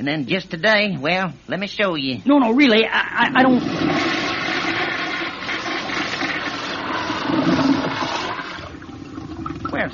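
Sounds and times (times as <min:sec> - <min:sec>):
speech: 0:00.0 - 0:04.1
old toilet flushing: 0:03.4 - 0:09.9.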